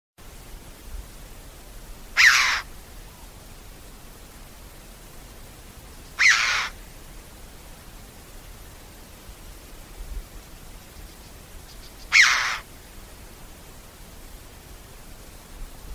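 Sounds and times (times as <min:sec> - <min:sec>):
faint background noise: 0:00.2 - 0:15.9
bird harsh rasping calls: 0:02.2 - 0:02.7, 0:06.2 - 0:06.8, 0:11.7 - 0:12.7.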